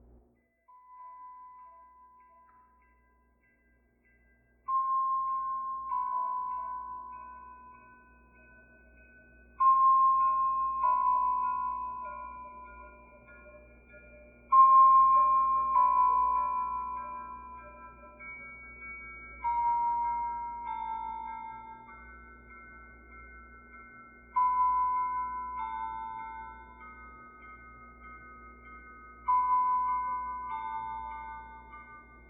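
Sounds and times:
music box ambience: 0:00.4 - 0:32.2.

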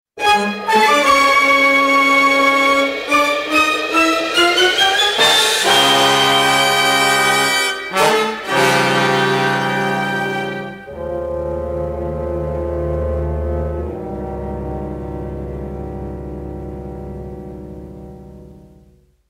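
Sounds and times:
dramatic music bridge: 0:00.2 - 0:19.0.

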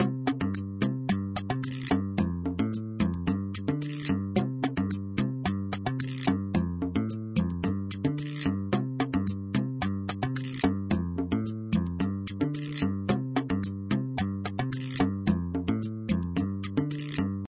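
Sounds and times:
music from a boombox: 0:00.0 - 0:17.4.

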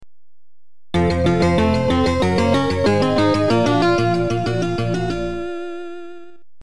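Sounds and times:
level completed jingle: 0:01.0 - 0:06.0.

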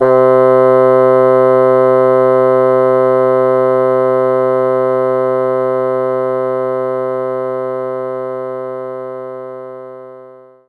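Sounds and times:
bassoon playing C3: 0:00.0 - 0:10.6.

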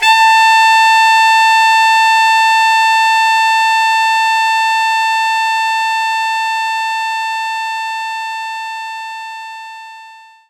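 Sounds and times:
alto saxophone note: 0:00.0 - 0:07.7.

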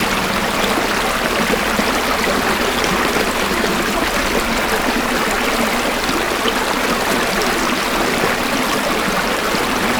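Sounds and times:
exterior river ambience: 0:00.0 - 0:09.9.

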